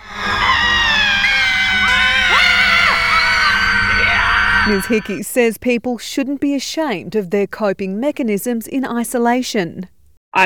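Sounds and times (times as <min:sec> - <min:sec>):
person screaming from a front door: 0:00.0 - 0:05.2
speech: 0:04.7 - 0:10.4.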